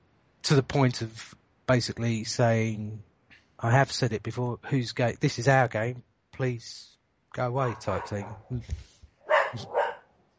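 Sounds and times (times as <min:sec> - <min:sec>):
speech: 0:00.5 - 0:08.9, 0:09.5 - 0:09.8
dog barking: 0:07.6 - 0:08.5, 0:09.2 - 0:10.1.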